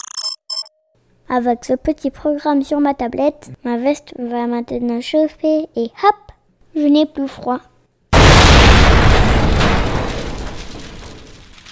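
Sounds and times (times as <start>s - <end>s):
speech: 1.3s - 6.2s, 6.8s - 7.7s
single loud explosion with deep broadband boom: 8.2s - 11.6s.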